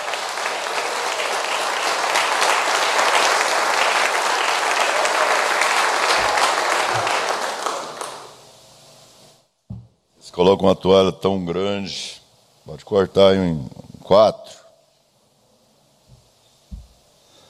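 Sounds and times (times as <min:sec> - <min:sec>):
audience applauding: 0:00.0 - 0:08.5
speech: 0:10.4 - 0:14.6.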